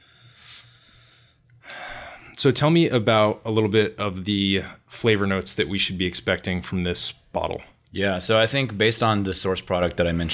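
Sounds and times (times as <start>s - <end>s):
person sniffing a glass of rum: 0.3s - 2.4s
speech: 2.4s - 10.3s.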